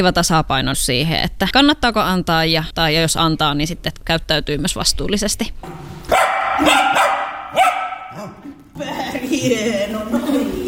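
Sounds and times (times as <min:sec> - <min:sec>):
speech: 0:00.0 - 0:05.9, 0:06.6 - 0:10.6
dog barking: 0:06.1 - 0:08.5
laughter: 0:08.2 - 0:10.6.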